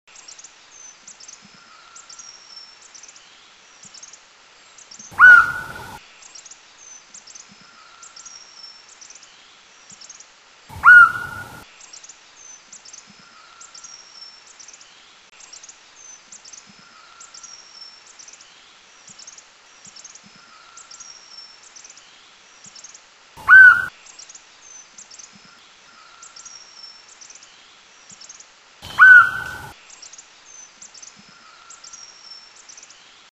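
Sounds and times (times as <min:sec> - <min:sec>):
Red-collared Woodpecker in Laos: 0:05.1 - 0:06.0, 0:10.7 - 0:11.6, 0:23.4 - 0:23.9, 0:28.8 - 0:29.8.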